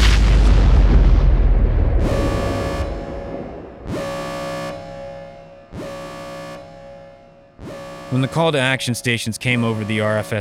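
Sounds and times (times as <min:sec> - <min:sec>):
heavy rumbling blast from an attack on a space station: 0:00.0 - 0:04.9
speech: 0:08.2 - 0:10.3.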